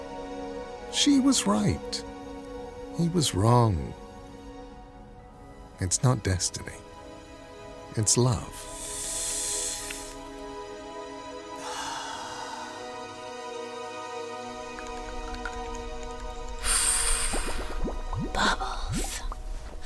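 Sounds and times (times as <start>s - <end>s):
speech: 0.9s - 2.1s, 3.0s - 4.0s, 5.8s - 6.8s, 8.0s - 8.7s
fizzing hiss: 8.5s - 10.6s, 16.4s - 19.8s
wet bubbly popping and dripping: 14.6s - 19.8s.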